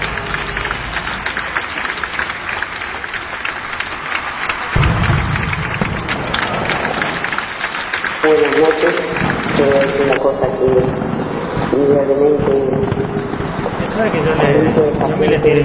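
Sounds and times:
audience applause at a live show in Montevideo: 0.0 - 10.2
speech: 8.3 - 11.1, 11.7 - 15.6.

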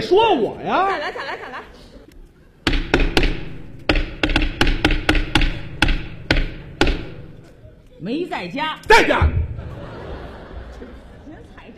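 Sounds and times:
speech: 0.0 - 1.8, 8.0 - 9.4
laughter: 0.8 - 2.1, 9.2 - 11.7
hollow knocking on a door: 2.7 - 7.4.

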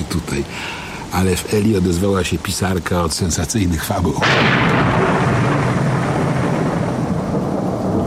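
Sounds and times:
speech: 0.2 - 5.4
thunderstorm thunder rumble with lightning strikes: 4.2 - 8.0.

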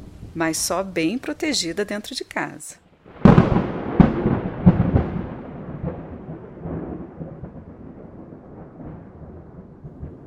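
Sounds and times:
speech: 0.4 - 2.8
thunder cracking and rumbling through a storm: 3.0 - 10.2.

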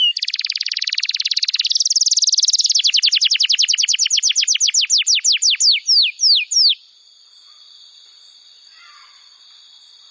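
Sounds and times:
bar-winged prinia singing downslurred notes and whistled slurs: 0.0 - 6.8.

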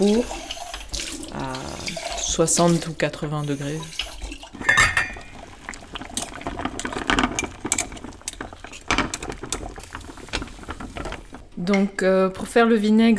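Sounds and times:
speech: 0.0 - 0.5, 2.4 - 4.1, 11.7 - 13.1
water boiling in a pot to sterilize a glass jar: 0.0 - 13.1
glass jar clinking and knocking in boiling water: 4.6 - 5.3.

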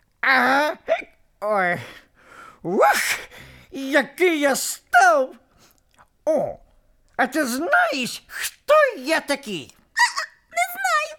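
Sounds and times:
person imitating hiccups: 0.2 - 1.2
speech: 0.2 - 2.0, 2.6 - 5.4, 6.3 - 6.6, 7.2 - 9.8.

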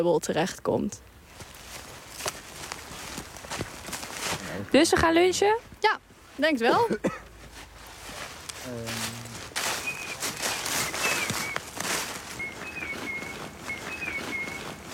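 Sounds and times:
speech: 0.0 - 1.1, 4.6 - 7.2, 8.7 - 9.2
high signal whistles answering back during a group outing: 9.6 - 14.9.

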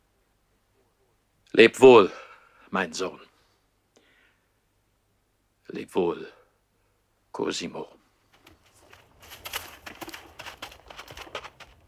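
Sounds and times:
low hiss: 0.0 - 11.8
speech: 1.6 - 3.3, 5.7 - 6.4, 7.4 - 8.0
hoofbeats of a horse ridden slowly away: 8.3 - 11.8.

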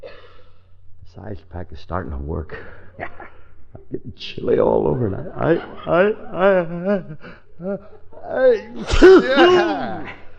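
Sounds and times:
speech: 1.2 - 10.2
laughter: 4.8 - 10.3
man sneezing with wheezy gasps: 8.6 - 10.1.

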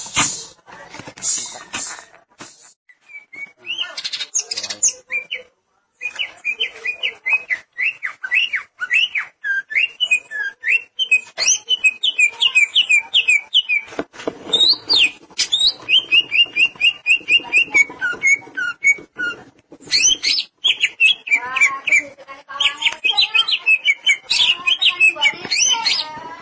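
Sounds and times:
Greater green leafbird singing whistles, chirps and trills: 3.0 - 13.9, 14.5 - 26.1.

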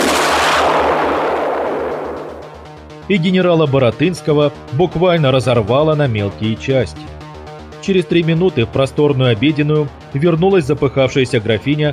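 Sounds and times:
FPV drone exploding: 0.0 - 3.1
low rhythmic throbbing pulse: 0.0 - 11.9
speech: 3.1 - 7.2, 7.9 - 11.9.

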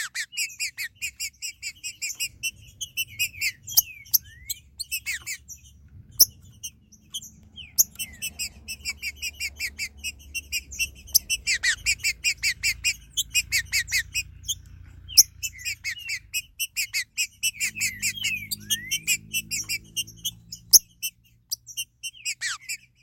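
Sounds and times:
Green-winged saltator calling with sharp notes, slurred whistles and bright chirps: 0.0 - 23.0
low background rumble: 0.0 - 23.0.

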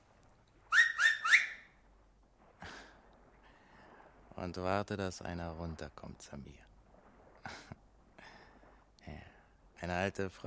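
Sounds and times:
loud high finger whistles: 0.7 - 1.7
speech: 4.4 - 6.7, 9.8 - 10.4.

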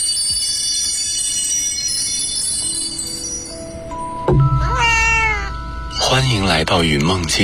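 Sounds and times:
soft ambient bed with sustained tonal lines in a sleep app: 0.3 - 7.4
cats meowing in a sleep app soundscape: 4.6 - 5.6
speech: 6.3 - 7.4.

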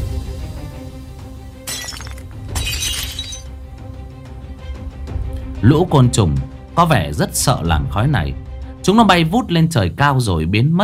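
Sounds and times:
glass bottle cracking and shattering: 1.7 - 3.5
speech: 5.6 - 10.8.

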